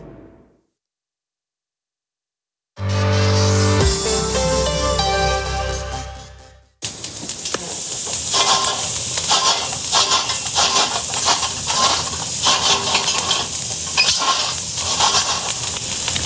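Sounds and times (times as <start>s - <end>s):
sustained tonal music: 2.8s - 6.7s
wood embers crackling and hissing with chestnuts roasting: 6.8s - 16.2s.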